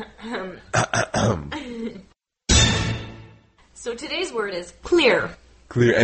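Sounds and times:
man clearing his throat: 0.7 - 1.6
speech: 4.0 - 6.0.

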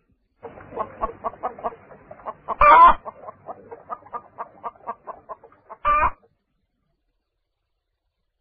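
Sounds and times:
hen clucking: 0.4 - 6.3.

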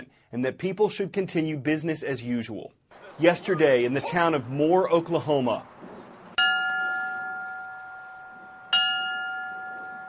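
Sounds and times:
speech: 0.3 - 5.7
memorial bell tolling: 6.4 - 10.0.

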